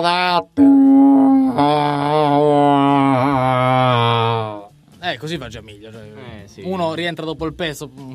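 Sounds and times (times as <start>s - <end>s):
speech: 0.0s - 2.0s, 5.2s - 8.1s
person imitating elephant trumpeting without a tube: 0.0s - 4.7s.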